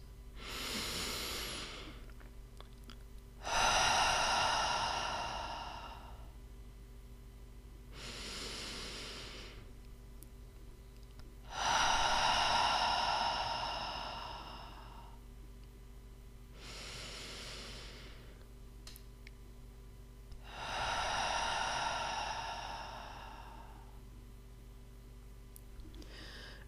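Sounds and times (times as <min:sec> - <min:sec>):
slow deep breath in through the nose: 0:00.4 - 0:02.1, 0:03.4 - 0:06.3, 0:08.0 - 0:09.7, 0:11.5 - 0:15.2, 0:16.6 - 0:18.4, 0:20.4 - 0:24.0, 0:26.0 - 0:26.6.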